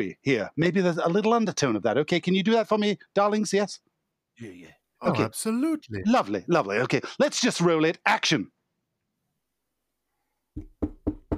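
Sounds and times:
speech: 0.0s - 8.6s
firm knocking on a door: 10.6s - 11.3s.

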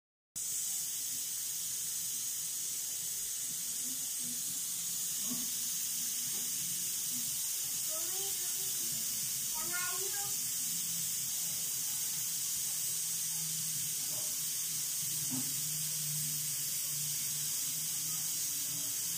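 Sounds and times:
running water or flushing toilet: 0.4s - 19.1s.

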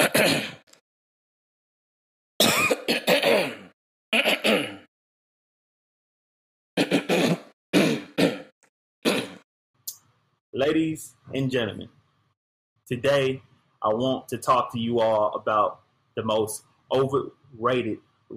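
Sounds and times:
person clearing throat: 0.0s - 0.6s, 2.4s - 4.9s, 6.8s - 9.4s
speech: 10.6s - 12.0s, 12.9s - 18.3s.

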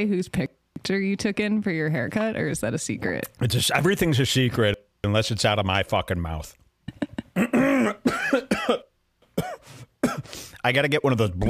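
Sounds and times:
speech: 0.0s - 7.5s, 10.6s - 11.4s
raspy throat clearing: 7.3s - 10.3s
harsh coughing: 7.3s - 10.4s.

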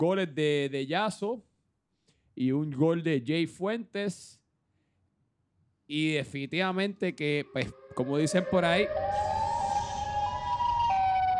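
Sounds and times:
speech: 0.0s - 1.5s, 2.4s - 4.4s, 5.9s - 9.4s
siren wailing outside: 6.5s - 11.3s.

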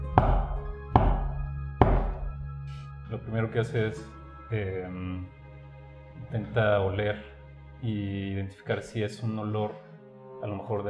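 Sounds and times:
low steady hum: 0.0s - 10.8s
slow heavy knocks on a door: 0.2s - 2.4s
speech: 3.1s - 5.4s, 6.3s - 9.8s, 10.4s - 10.8s.

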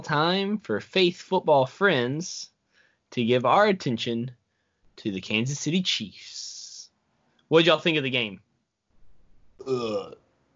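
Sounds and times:
speech: 0.0s - 2.5s, 3.1s - 4.4s, 5.0s - 6.4s, 7.5s - 8.4s, 9.6s - 10.2s
loud burp: 9.6s - 10.2s.

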